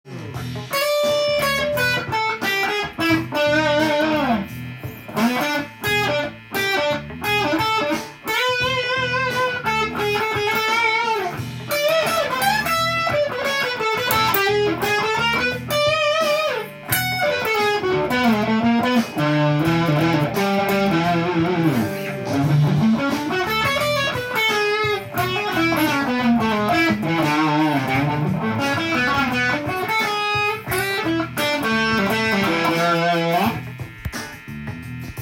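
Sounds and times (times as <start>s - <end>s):
E7 one-chord solo: 0.1s - 35.2s.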